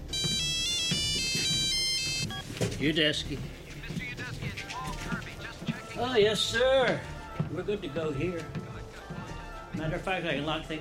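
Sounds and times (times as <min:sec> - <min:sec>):
satellite phone electronic ringtone aboard a cargo plane: 0:00.1 - 0:02.5
speech: 0:02.6 - 0:03.6, 0:06.0 - 0:08.6, 0:09.8 - 0:10.7.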